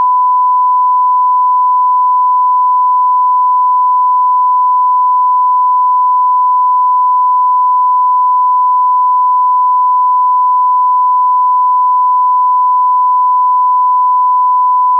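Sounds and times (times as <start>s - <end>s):
1 kHz stereo sine tone at 48000 Hz: 0.0s - 14.9s.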